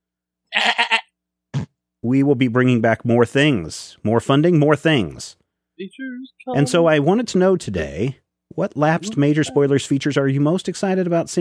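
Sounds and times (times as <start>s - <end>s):
goat bleating: 0.5s - 1.1s
speech: 2.1s - 11.4s.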